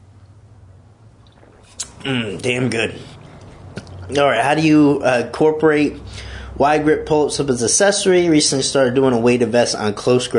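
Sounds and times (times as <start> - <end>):
steady low hum: 0.0 - 10.3
person sipping coffee and espresso mix: 1.2 - 4.1
soft wet mouth sounds: 1.2 - 4.1
brief slurp: 1.3 - 4.1
speech: 1.7 - 3.2, 4.1 - 10.3.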